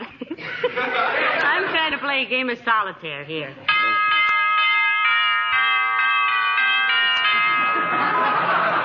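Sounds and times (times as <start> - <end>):
laughter: 0.0 - 2.3, 7.2 - 8.8
speech: 2.0 - 4.2
loud electric doorbell ringing a short melody: 3.7 - 8.8.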